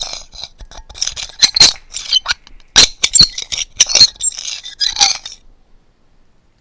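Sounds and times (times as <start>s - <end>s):
squeaky chair being spun around with a person seated: 1.3s - 2.4s, 3.0s - 5.4s.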